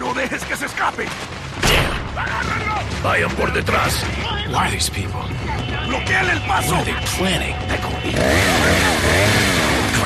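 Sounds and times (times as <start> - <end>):
speech: 0.3 - 1.6, 2.2 - 9.4
chainsaw engine revving: 8.1 - 10.0.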